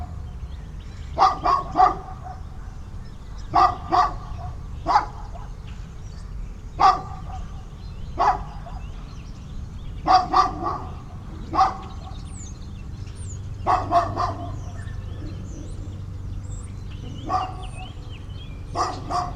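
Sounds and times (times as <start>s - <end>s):
faint high bird chirp: 0.0s - 19.3s
low rumbling background: 0.0s - 19.3s
dog barking loudly in a suburban setting: 1.2s - 5.6s, 6.2s - 9.0s, 10.0s - 12.5s, 13.6s - 15.9s, 17.0s - 18.0s, 18.7s - 19.3s.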